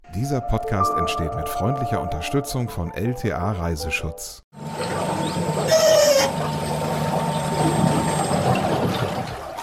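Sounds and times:
speech: 0.2s - 4.7s
electric whisper boat hum in Holland: 4.6s - 9.6s.

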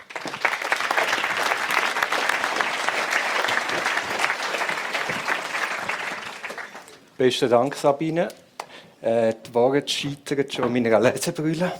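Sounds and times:
large audience clapping warmly to welcome speakers: 0.0s - 7.1s
speech: 7.2s - 8.4s, 9.0s - 11.7s.

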